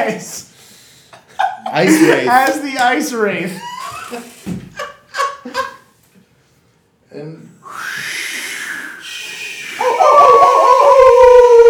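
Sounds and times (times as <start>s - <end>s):
speech: 0.0s - 0.5s, 1.7s - 4.6s, 7.2s - 7.8s
person howling like a wolf: 9.8s - 11.6s.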